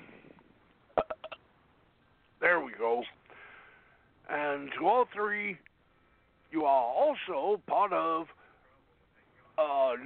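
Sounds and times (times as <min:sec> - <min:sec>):
person belching: 0:01.0 - 0:01.4
weak gulping pulses: 0:01.0 - 0:01.4
speech: 0:02.7 - 0:03.2, 0:04.8 - 0:05.7, 0:06.5 - 0:08.4, 0:09.6 - 0:10.0.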